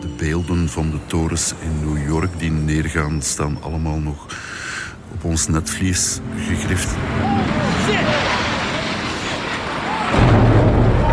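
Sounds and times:
speech: 0.2s - 8.5s
huge explosion in archival news recording: 6.9s - 11.1s.

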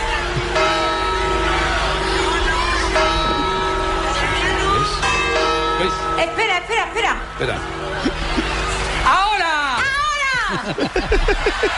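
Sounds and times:
church bell striking the New Year chimes: 0.2s - 6.8s
speech: 7.4s - 7.9s, 10.5s - 11.7s
laughter: 7.9s - 9.0s, 10.1s - 11.7s.

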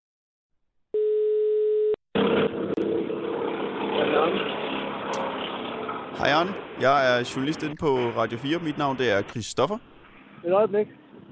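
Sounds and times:
telephone ringback tone: 1.0s - 2.0s
continuous rushing noise on a telephone line: 3.2s - 11.3s
speech: 6.2s - 11.3s.

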